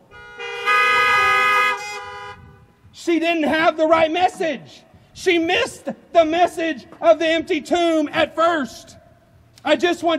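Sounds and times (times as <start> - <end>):
several car horns honking together: 0.0 - 2.8
speech: 3.1 - 9.0, 9.6 - 10.1.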